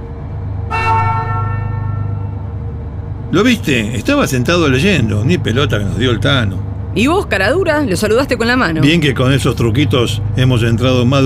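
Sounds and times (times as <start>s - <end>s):
steady low car engine rumble: 0.0s - 11.2s
car horn honking as the car drives out of a garage: 0.7s - 2.6s
speech: 3.3s - 11.2s.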